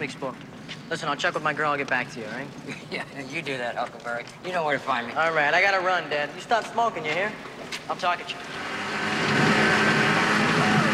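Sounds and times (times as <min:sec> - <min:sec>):
speech: 0:00.0 - 0:09.1
small dune buggy engines roaring while speeding across a beach: 0:08.5 - 0:10.9.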